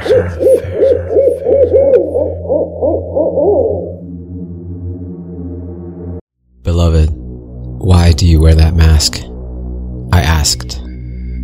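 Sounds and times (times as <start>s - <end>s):
owl hooting: 0.0s - 4.2s
speech: 0.2s - 0.6s, 8.2s - 9.3s, 10.2s - 10.8s.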